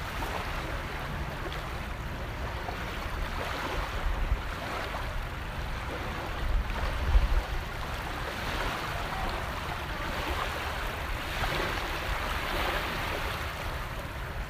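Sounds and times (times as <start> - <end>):
beach waves washing in: 0.0 - 14.4.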